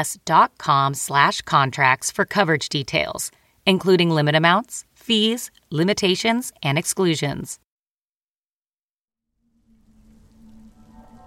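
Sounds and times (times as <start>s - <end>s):
speech: 0.0s - 7.6s
light rain falling: 9.6s - 11.2s.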